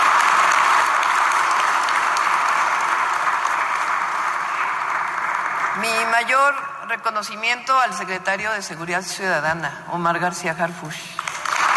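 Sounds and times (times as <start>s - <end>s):
sustained applause from a large audience: 0.0s - 6.1s, 11.2s - 11.7s
speech: 5.8s - 11.2s.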